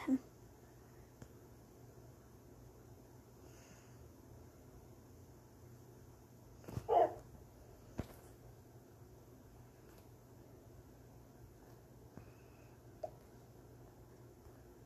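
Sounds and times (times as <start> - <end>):
speech: 0.0 - 0.3
low steady hum: 0.0 - 14.8
video game wolf bark: 6.8 - 7.2.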